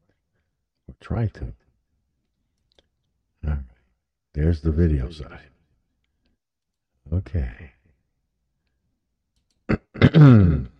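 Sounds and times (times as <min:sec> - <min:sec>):
speech: 0:01.0 - 0:01.6, 0:04.4 - 0:05.5, 0:07.2 - 0:07.8, 0:10.0 - 0:10.7
person clearing throat: 0:09.7 - 0:10.7.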